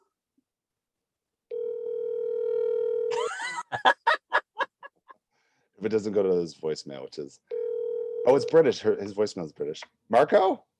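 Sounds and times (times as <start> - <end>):
telephone dial tone at the start of a call to a friend: 1.5 - 3.1, 7.5 - 8.3
speech: 3.7 - 4.0, 5.8 - 7.5, 8.2 - 10.7.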